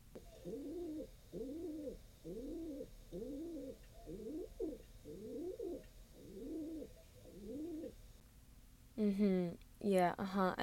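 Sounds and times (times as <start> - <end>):
pigeon cooing: 0.2 - 8.0
speech: 9.0 - 10.6.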